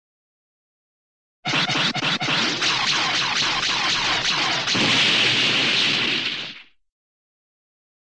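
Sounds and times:
single cartoon sci-fi nose cannon shot: 0:01.5 - 0:06.8.

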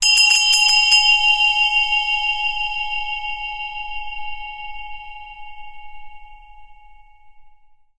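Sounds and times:
zen bell: 0:00.0 - 0:07.9.

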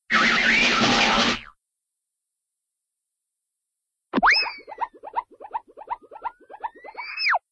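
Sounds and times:
cartoon spin effect: 0:00.1 - 0:01.5, 0:04.2 - 0:07.4.

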